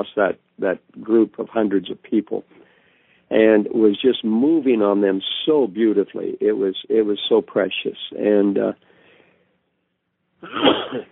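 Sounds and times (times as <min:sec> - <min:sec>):
speech: 0:00.0 - 0:02.6, 0:03.3 - 0:08.9, 0:10.4 - 0:11.1
person sneezing into a phone: 0:10.4 - 0:11.1.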